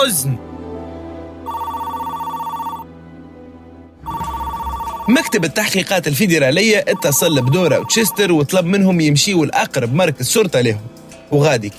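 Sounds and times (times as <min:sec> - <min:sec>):
speech: 0:00.0 - 0:00.5, 0:05.1 - 0:11.7
telephone ringing with bright electronic trill: 0:01.5 - 0:02.8, 0:04.0 - 0:05.8, 0:06.9 - 0:08.5.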